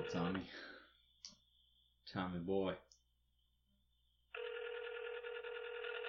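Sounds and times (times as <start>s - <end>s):
telephone ringing with electronic trill: 0.0s - 0.4s, 4.3s - 6.0s
speech: 0.0s - 0.8s, 2.1s - 2.9s.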